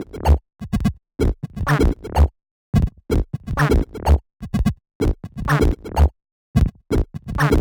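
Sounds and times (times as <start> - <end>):
funky underground bass loop in D at 126 BPM: 0.0 - 0.4, 1.2 - 4.2, 5.0 - 7.5.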